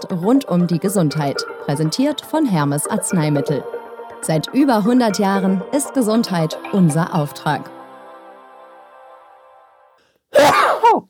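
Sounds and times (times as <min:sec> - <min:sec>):
speech: 0:00.0 - 0:07.8
tonal music bed: 0:00.0 - 0:10.0
person sneezing: 0:10.3 - 0:11.0.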